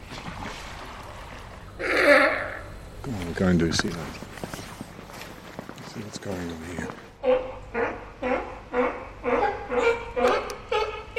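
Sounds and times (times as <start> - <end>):
speech: 3.1 - 4.4, 6.0 - 7.9
waterfowl honking barking alarm calls: 7.2 - 11.1.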